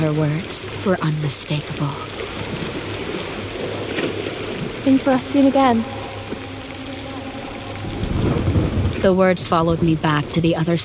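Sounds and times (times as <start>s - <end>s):
speech: 0.0s - 2.6s, 4.8s - 6.0s, 9.0s - 10.8s
heavy rain: 0.0s - 10.8s
churning surf with low rumble of waves: 2.5s - 10.8s.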